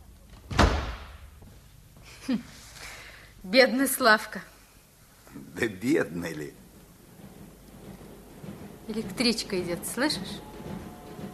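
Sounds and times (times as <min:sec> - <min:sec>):
door slamming shut: 0:00.4 - 0:01.3
speech: 0:02.3 - 0:02.7, 0:03.4 - 0:04.5, 0:05.6 - 0:06.6, 0:08.9 - 0:10.9.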